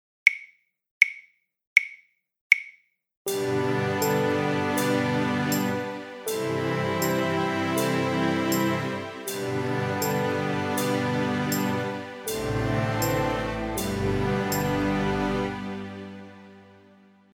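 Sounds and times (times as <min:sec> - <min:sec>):
instrumental backing track: 0:03.3 - 0:17.1.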